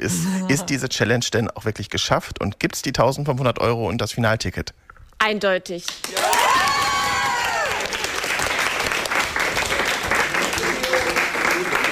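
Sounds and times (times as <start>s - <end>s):
speech: 0.0s - 6.2s
school class applauding after winning a challenge: 6.0s - 11.9s
school class cheering after winning a challenge: 6.1s - 8.0s.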